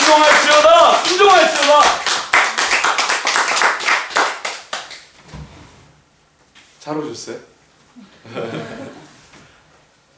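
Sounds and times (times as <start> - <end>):
group clapping in encouragement: 0.0 - 5.2
speech: 0.1 - 2.1, 6.9 - 9.1
laughter: 8.0 - 9.3.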